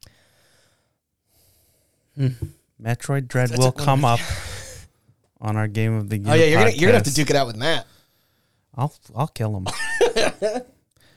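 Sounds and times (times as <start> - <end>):
deep breath drawn in and let out: 0.0 - 2.6, 4.2 - 5.2, 7.9 - 8.7, 11.0 - 11.1
speech: 2.2 - 4.4, 5.4 - 7.9, 8.7 - 10.8.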